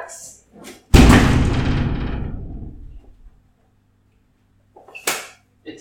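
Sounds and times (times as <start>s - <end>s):
empty box hurled against a glass door: 1.0s - 3.3s.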